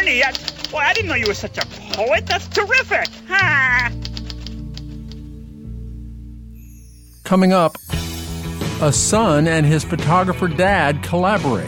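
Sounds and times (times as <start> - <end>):
typewriter clacking crisp key strikes: 0.0 - 5.2
speech: 0.1 - 4.0, 7.3 - 8.0, 8.8 - 11.6.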